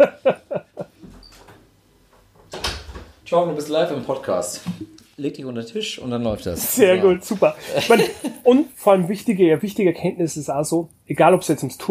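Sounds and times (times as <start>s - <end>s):
laughter: 0.0s - 1.0s, 7.5s - 8.4s
door pushed shut: 2.4s - 3.2s
speech: 3.3s - 11.8s.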